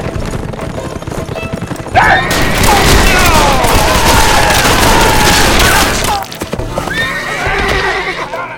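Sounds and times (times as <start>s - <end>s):
horse hooves clattering: 0.0s - 8.5s
spooked horses whinnying during an ambush: 1.2s - 8.5s
dense chaotic ambush noise: 1.9s - 8.5s.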